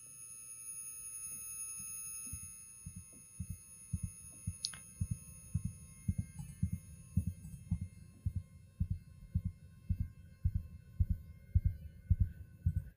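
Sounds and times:
simulated tinnitus high-pitched ringing: 0.0s - 12.9s
soft low thumps: 2.9s - 12.9s.

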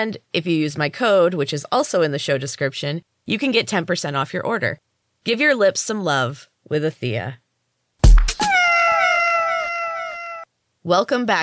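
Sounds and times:
speech: 0.0s - 7.4s, 10.8s - 11.4s
cat meowing: 8.4s - 10.5s.

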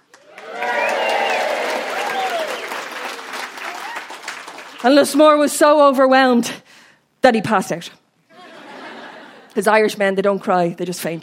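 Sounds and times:
audience applauding: 0.0s - 5.2s
audience cheering with whoops and shouts: 0.1s - 4.4s
speech: 4.8s - 8.0s, 9.6s - 11.2s.

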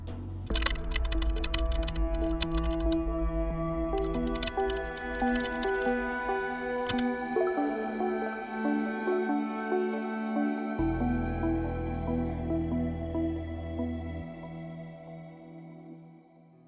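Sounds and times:
steady sustained musical backdrop: 0.0s - 16.0s
someone typing on a laptop keyboard: 0.5s - 3.0s, 4.0s - 6.0s.

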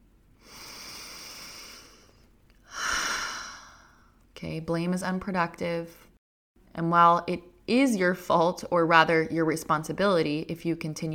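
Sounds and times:
louder breathy exhale: 0.4s - 4.1s
deep slow inhale: 0.4s - 4.2s
speech: 4.4s - 6.1s, 6.8s - 11.1s.

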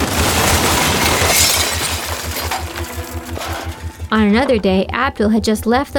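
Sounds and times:
breaking and falling debris with rumbling thuds: 0.0s - 4.2s
cement ceiling crashing down above a chair: 0.0s - 4.2s
speech: 4.1s - 5.9s.

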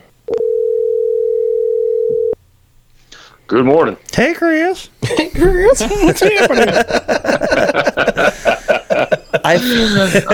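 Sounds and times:
loud steady telephone dial tone of an outgoing call: 0.3s - 2.4s
speech: 3.5s - 8.1s, 9.5s - 10.3s
laughter: 5.0s - 10.3s.

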